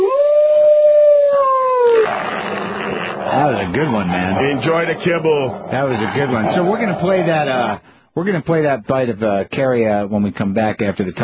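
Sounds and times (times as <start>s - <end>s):
dog howling: 0.0s - 7.8s
speech: 3.6s - 11.2s.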